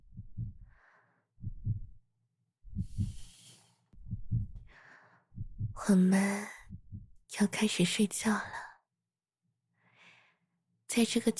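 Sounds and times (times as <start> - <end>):
heartbeat in lub-dub pairs: 0.0 - 0.7, 1.4 - 2.0, 2.6 - 3.3, 4.0 - 4.7, 5.3 - 6.0, 6.6 - 7.2
soft breathing: 0.5 - 1.3, 2.7 - 5.5, 9.8 - 10.5
speech: 5.9 - 6.6, 7.4 - 8.6, 11.0 - 11.3.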